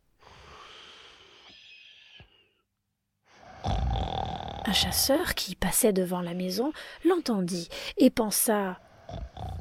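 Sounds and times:
wolf asleep in a bed snoring loudly: 0:03.4 - 0:05.1, 0:08.9 - 0:09.5
speech: 0:04.7 - 0:09.5.

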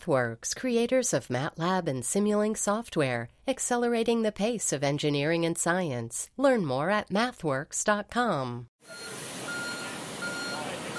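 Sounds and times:
speech: 0:00.0 - 0:09.3
truck reversing beeps at a construction site: 0:08.8 - 0:10.9
broadband construction site noise: 0:08.9 - 0:10.9.

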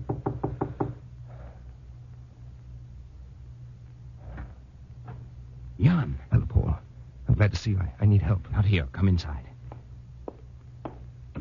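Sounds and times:
sharp knocks on a door: 0:00.0 - 0:01.0
low steady hum: 0:00.0 - 0:11.3
speech: 0:07.6 - 0:09.5.

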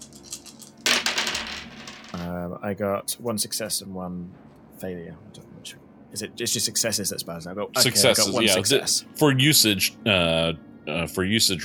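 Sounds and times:
five dice rolled in a tabletop game: 0:00.0 - 0:02.2
speech: 0:02.5 - 0:11.6.

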